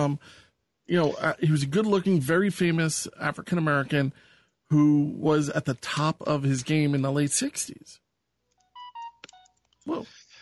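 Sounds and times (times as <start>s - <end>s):
speech: 0.0s - 8.0s, 9.8s - 10.2s
mobile phone electronic beeps: 8.6s - 9.6s.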